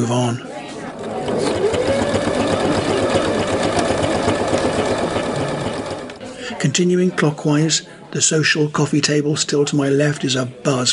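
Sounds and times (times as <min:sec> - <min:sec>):
speech: 0:00.0 - 0:00.5, 0:06.6 - 0:10.9
faint murmur of voices: 0:00.0 - 0:10.9
sewing machine running with rapid mechanical whir and clatter: 0:00.9 - 0:06.2.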